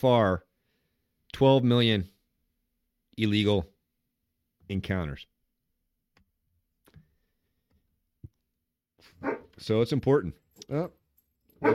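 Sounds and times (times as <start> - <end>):
speech: 0.0 - 0.5, 1.3 - 2.1, 3.2 - 3.7, 4.7 - 5.3, 9.2 - 11.0
two German Shepherd dogs barking in a studio: 9.0 - 9.6.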